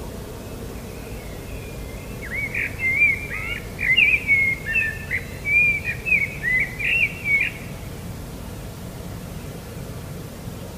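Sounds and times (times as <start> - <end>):
low steady background noise: 0.0 - 10.7
common blackbird singing: 0.4 - 7.7.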